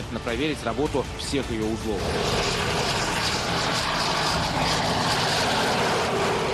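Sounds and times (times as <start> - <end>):
speech: 0.2 - 2.9
tank engine and tracks during test run: 1.8 - 6.5.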